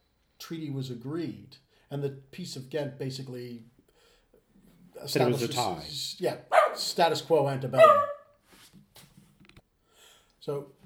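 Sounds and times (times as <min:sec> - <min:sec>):
speech: 0:00.5 - 0:03.8, 0:05.0 - 0:08.1, 0:10.4 - 0:10.8
faint dog barking: 0:06.5 - 0:06.9, 0:07.8 - 0:08.3.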